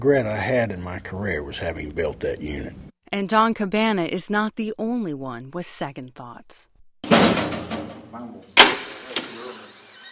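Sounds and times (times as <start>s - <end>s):
speech: 0.0s - 7.6s
heavy metal prison door at the Oregon State Penitentiary in Salem slamming: 7.0s - 9.5s.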